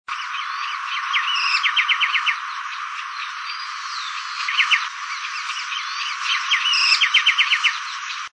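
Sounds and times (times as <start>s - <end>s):
common anambé calling: 0.1s - 8.3s.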